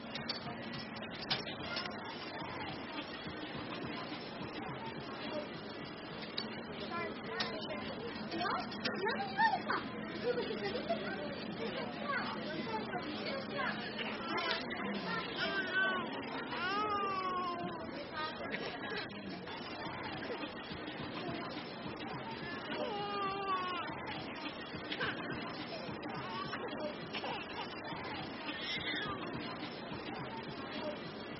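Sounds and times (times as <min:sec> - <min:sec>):
shopping mall baby shop ambience: 0:00.0 - 0:31.3.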